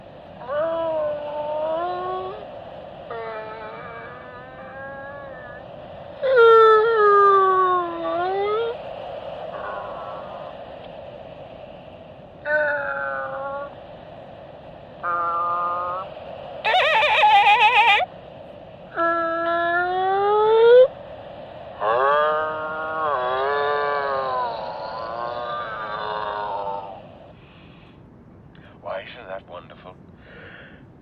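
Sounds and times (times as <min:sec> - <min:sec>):
imitation whale song: 0:00.3 - 0:10.8, 0:12.4 - 0:13.8, 0:15.0 - 0:18.1, 0:18.9 - 0:27.2.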